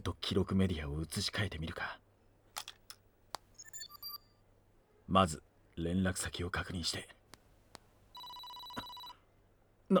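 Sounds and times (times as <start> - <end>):
speech: 0.0 - 2.0, 5.1 - 7.2
soft clicks: 7.3 - 7.9
phone ringing with single steady electronic tone: 8.1 - 9.2.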